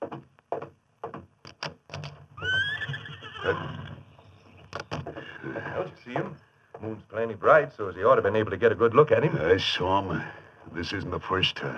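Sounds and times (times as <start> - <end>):
horse hooves clopping: 0.0 - 11.7
big white stallion whinnying: 2.4 - 4.7
speech: 6.0 - 11.7.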